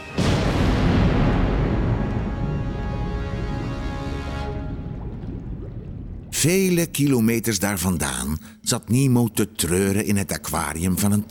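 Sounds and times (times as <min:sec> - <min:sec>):
huge explosion of sea mines: 0:00.2 - 0:06.5
speech: 0:06.4 - 0:11.2.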